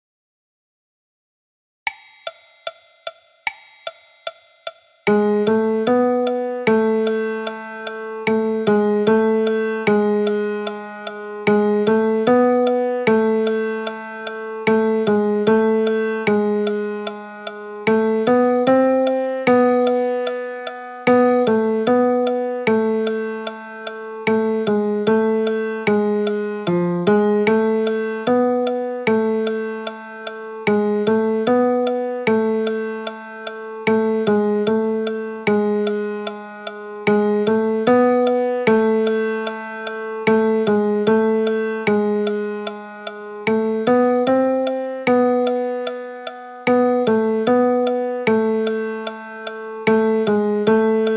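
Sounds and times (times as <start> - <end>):
piano: 5.1 - 51.1.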